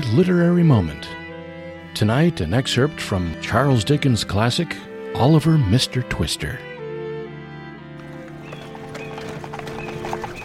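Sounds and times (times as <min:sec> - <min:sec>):
speech: 0:00.1 - 0:01.2, 0:02.0 - 0:06.7
donkey hooves clip-clopping pulling a small cart laden with soot sacks: 0:08.0 - 0:10.4.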